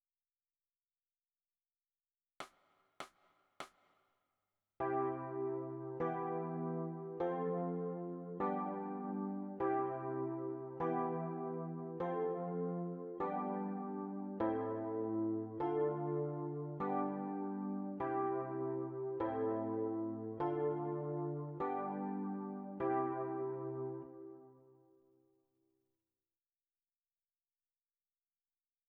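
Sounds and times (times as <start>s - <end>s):
electric piano: 4.8s - 25.0s.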